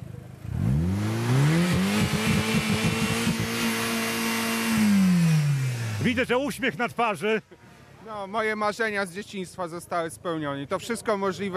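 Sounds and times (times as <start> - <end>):
test engine revved at a Science Day: 0.4 - 6.4
speech: 6.1 - 11.5.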